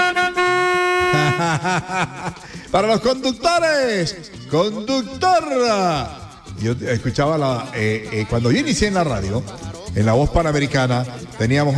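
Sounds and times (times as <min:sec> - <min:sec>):
car horn honking: 0:00.0 - 0:01.9
laughter: 0:01.0 - 0:03.4
speech: 0:01.5 - 0:11.7.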